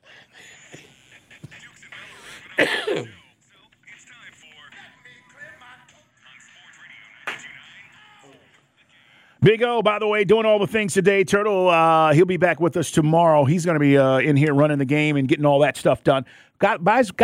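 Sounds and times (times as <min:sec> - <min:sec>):
low talk: 0:00.7 - 0:10.1
throat clearing: 0:02.5 - 0:03.3
speech: 0:09.5 - 0:17.2.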